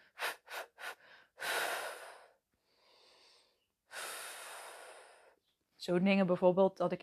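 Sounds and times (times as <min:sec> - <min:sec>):
quick sharp sniffing inhales: 0:00.0 - 0:05.4
long airy breaths in and out at a slow deliberate pace: 0:00.0 - 0:05.8
speech: 0:05.8 - 0:07.0.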